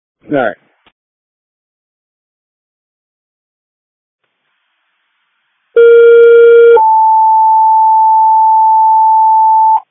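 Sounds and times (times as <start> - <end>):
speech: 0.3 - 0.6
two-tone fire department dispatch alert: 5.8 - 9.8.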